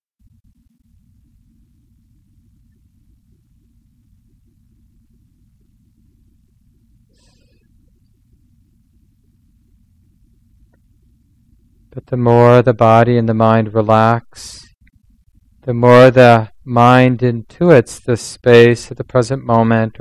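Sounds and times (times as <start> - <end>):
blower fan running in the room: 0.2 - 19.9
brief higher-pitched chirp or squeak: 7.2 - 7.6
speech: 12.0 - 14.7, 15.7 - 19.9.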